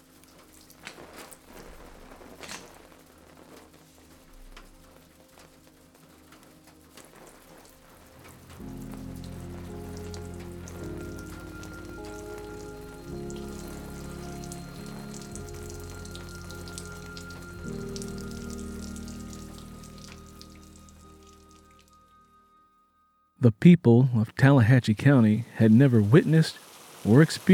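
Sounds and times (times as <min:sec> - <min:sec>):
water dripping from a leaky roof into puddles on the floor: 0:00.0 - 0:22.3, 0:25.5 - 0:27.5
deep sustained droning music: 0:04.0 - 0:23.0
speech: 0:23.4 - 0:27.5.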